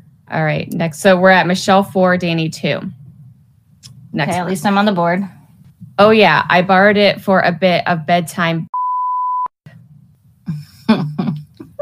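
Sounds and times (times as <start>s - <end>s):
low rumbling noise: 0.0s - 8.2s
speech: 0.3s - 3.0s, 4.1s - 5.4s, 6.0s - 8.7s
censor bleep tone: 8.7s - 9.6s.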